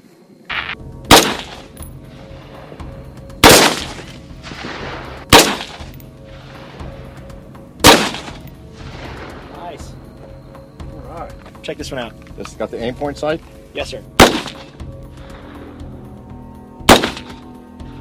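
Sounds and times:
M4 rifle gunshots, an AR-15 equivalent, fired singly: 0.6 - 1.7, 3.4 - 6.0, 7.8 - 8.4, 14.2 - 14.7, 16.9 - 17.4
speech: 11.7 - 14.2.

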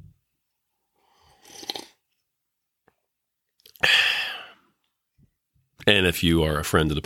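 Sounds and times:
person slurping hot dark roast coffee: 1.2 - 2.0
breathy exhale of satisfaction: 3.8 - 4.6
speech: 5.9 - 7.0.

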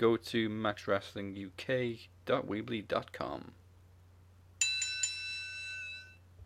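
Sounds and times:
speech: 0.0 - 3.6
doorbell chime: 4.6 - 6.2.

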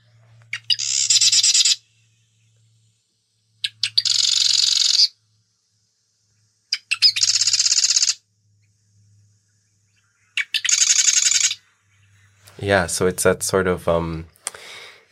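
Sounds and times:
loud territorial bird song: 0.0 - 2.9, 3.5 - 12.5
speech: 12.6 - 14.4.

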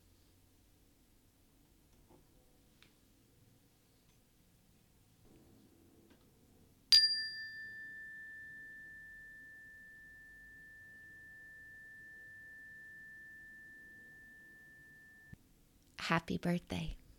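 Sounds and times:
meditation bell struck to close a meditation practice: 6.9 - 15.4
speech: 16.1 - 17.0.

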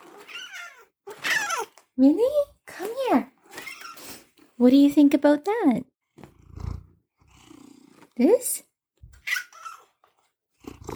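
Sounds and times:
cat meowing: 0.0 - 1.8
speech: 2.0 - 2.5, 4.6 - 5.9, 8.2 - 8.7.

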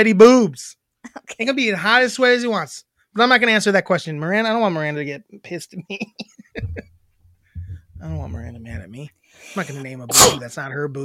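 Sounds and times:
speech: 0.0 - 6.9, 8.0 - 11.0
person sneezing: 10.1 - 10.5.

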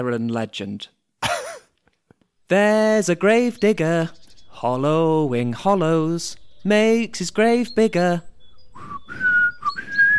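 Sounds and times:
speech: 0.0 - 1.0, 2.5 - 8.3
person whistling a short tune: 8.8 - 10.1.

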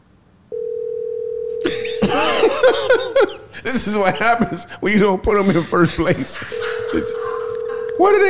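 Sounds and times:
phone ringing tone of an unanswered call placed from a gate: 0.5 - 2.4, 6.5 - 8.2
laughter: 1.6 - 8.2
speech: 3.7 - 7.3, 8.0 - 8.2.

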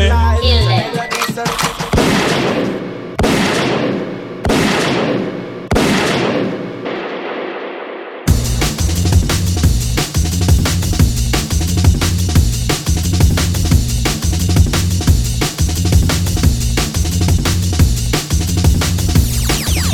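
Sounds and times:
music: 0.0 - 2.0, 8.3 - 19.9
booming gunshot sound effects signalling a rewind: 2.0 - 8.4, 19.2 - 19.9.

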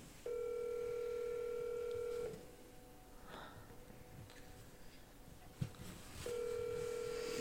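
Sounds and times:
phone ringback tone over a speakerphone: 0.2 - 2.5, 6.2 - 7.3.

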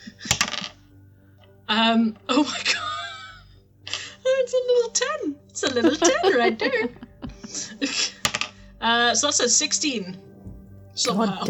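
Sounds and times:
dice rattling across a hard tabletop: 0.3 - 0.8
speech: 1.7 - 2.8, 4.8 - 7.0, 8.8 - 10.3, 11.0 - 11.4
laughter: 5.6 - 8.2.

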